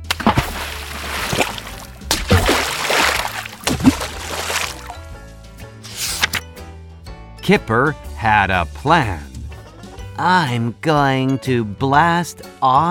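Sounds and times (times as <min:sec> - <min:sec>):
floating toys splashing into paddling pool water: 0:00.0 - 0:05.0
soft music: 0:00.0 - 0:12.9
speech: 0:07.5 - 0:09.3, 0:10.2 - 0:12.9.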